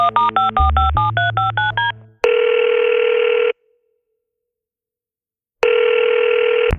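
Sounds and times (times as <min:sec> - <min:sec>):
touch-tone telephone dialing beeps: 0:00.0 - 0:02.0
telephone ringing tone: 0:00.0 - 0:03.6, 0:05.6 - 0:06.7.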